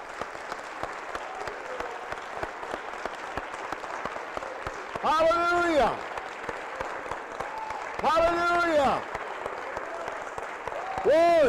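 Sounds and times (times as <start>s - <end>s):
audience clapping: 0.0s - 11.4s
speech: 11.0s - 11.4s.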